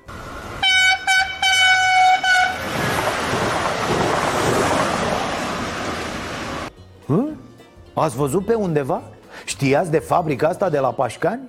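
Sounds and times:
passing diesel train built at the Electroputere factory in Pașcani: 0.0 - 6.7
diesel train horn blasts: 0.1 - 2.9
speech: 8.0 - 11.4.

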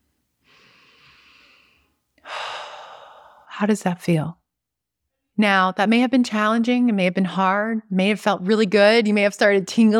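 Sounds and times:
person taking a deep breath: 0.4 - 3.5
speech: 3.6 - 4.4, 5.4 - 9.9.

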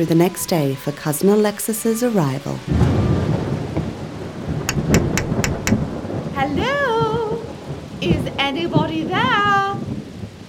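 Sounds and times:
speech: 0.0 - 3.1
rain: 0.0 - 10.4
nighttime thunderstorm thunder rumbling: 2.7 - 10.4
sharp evenly spaced taps: 4.7 - 5.9.

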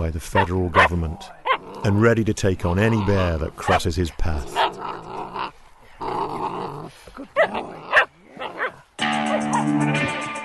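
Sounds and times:
speech: 0.1 - 5.0
Karelian bear dog puppy barking in sharp yappy bursts: 0.4 - 1.6, 7.4 - 9.8
Karelian bear dog puppy growling: 1.5 - 2.0, 4.4 - 8.8.

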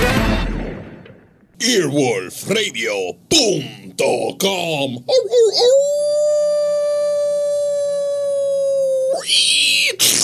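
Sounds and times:
speech: 1.6 - 6.4, 9.2 - 10.2
single loud wolf howl: 5.1 - 9.5.

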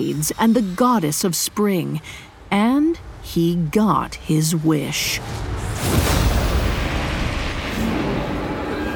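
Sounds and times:
speech: 0.0 - 6.2
booming explosion with heavy low rumble and roaring debris-like noise: 5.2 - 8.8.

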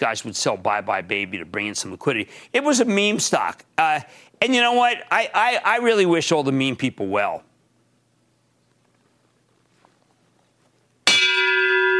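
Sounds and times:
speech: 0.0 - 7.5
church bell strike: 11.1 - 11.9.

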